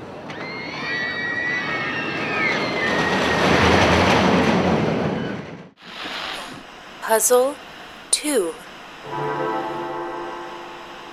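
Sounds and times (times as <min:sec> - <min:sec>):
roller coaster rumbling on track: 0:00.0 - 0:05.8
speech: 0:07.1 - 0:09.2.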